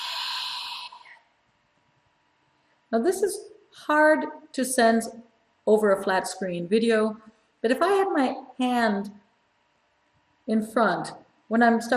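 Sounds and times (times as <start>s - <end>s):
breathy exhalation through an open unconstricted throat: 0.0s - 1.3s
speech: 2.9s - 9.2s, 10.5s - 11.9s.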